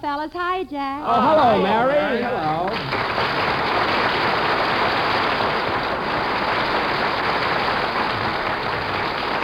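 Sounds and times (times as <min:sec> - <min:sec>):
speech: 0:00.0 - 0:04.5
large audience applauding: 0:02.4 - 0:09.4.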